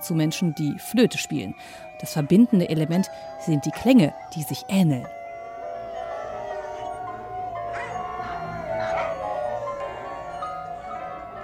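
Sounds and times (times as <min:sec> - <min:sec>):
speech: 0:00.0 - 0:05.2
dogs howling in long wavering tones: 0:00.0 - 0:11.4.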